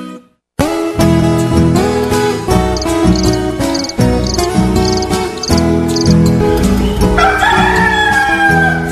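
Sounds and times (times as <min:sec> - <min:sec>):
lively music with high cricket-like chirping tones: 0:00.6 - 0:08.9
speckled rooster crowing: 0:07.1 - 0:08.9.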